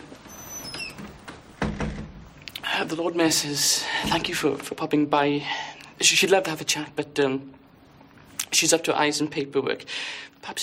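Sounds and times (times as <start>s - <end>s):
door creaking open with squeaking hinges: 0.0s - 2.4s
speech: 2.8s - 7.6s, 8.6s - 10.6s.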